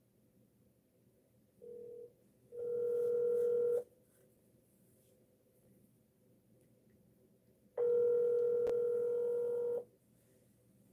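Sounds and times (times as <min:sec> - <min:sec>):
ringing tone of an outgoing telephone call: 0:01.6 - 0:03.9, 0:07.8 - 0:09.9.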